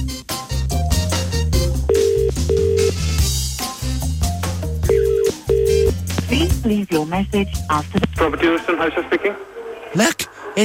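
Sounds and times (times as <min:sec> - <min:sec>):
dense steady musical backing: 0:00.0 - 0:09.0
electronic telephone dialing tones: 0:01.9 - 0:03.1, 0:04.8 - 0:06.0
speech: 0:06.6 - 0:10.6.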